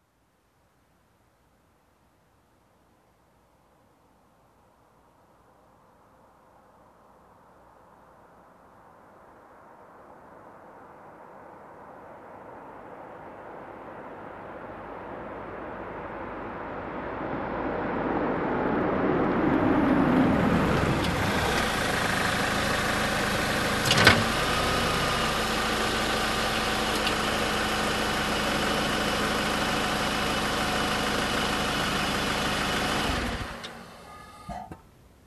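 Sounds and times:
car approaching and parking: 11.7 - 35.0.

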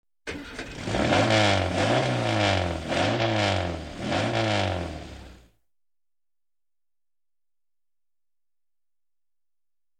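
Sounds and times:
muscle car engine starting and revving: 0.3 - 5.5.

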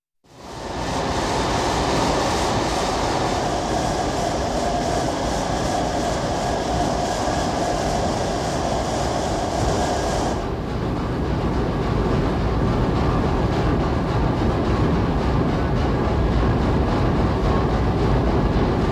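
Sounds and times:
heavy factory machinery: 0.3 - 18.8.

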